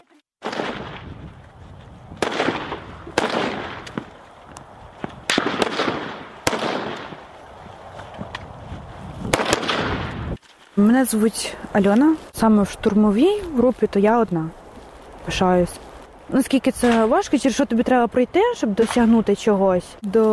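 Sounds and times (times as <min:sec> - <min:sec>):
assault rifle shots on a firing range: 0:00.4 - 0:01.1, 0:02.2 - 0:04.1, 0:05.3 - 0:07.2, 0:09.3 - 0:10.3
speech: 0:10.8 - 0:14.6, 0:15.2 - 0:20.3.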